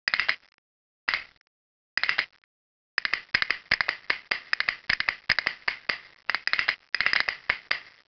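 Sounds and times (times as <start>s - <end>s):
castanets notification tone for mobile phones: 0.1s - 8.0s.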